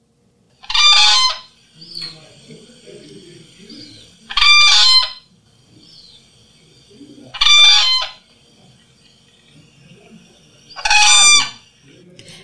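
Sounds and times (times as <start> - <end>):
whooping crane bugling calls: 0.6 - 2.1, 3.7 - 5.3, 7.3 - 8.3, 10.6 - 11.7
faint low murmuring: 0.6 - 12.4.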